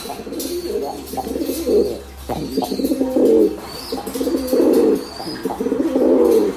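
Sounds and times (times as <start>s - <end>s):
pigeon cooing at a microphone while strutting: 0.0s - 6.5s.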